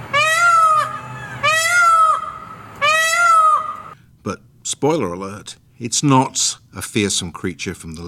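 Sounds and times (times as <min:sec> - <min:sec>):
peacock calls: 0:00.0 - 0:04.0
speech: 0:04.2 - 0:08.0.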